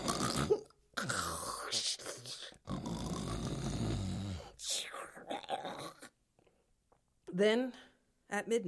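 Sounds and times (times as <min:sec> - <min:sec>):
loud raspy rattling snoring: 0:00.0 - 0:01.7, 0:02.6 - 0:04.6
speech: 0:07.4 - 0:08.6.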